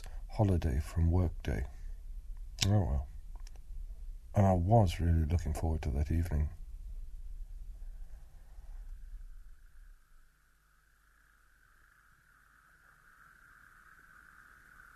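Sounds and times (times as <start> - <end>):
low wind-like rumble: 0.0 - 10.0
speech: 0.4 - 1.8, 2.6 - 3.1, 4.4 - 6.6
chorus of toads calling from a pond: 8.3 - 14.9.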